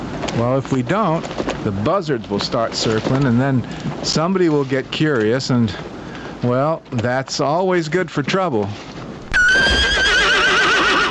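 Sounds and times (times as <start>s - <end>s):
speech: 0.4s - 8.9s
horse neighing: 9.2s - 11.0s.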